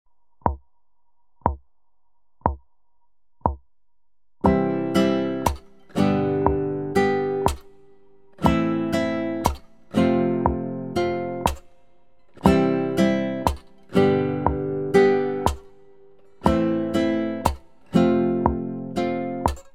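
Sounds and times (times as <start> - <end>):
strumming: 4.4 - 19.7.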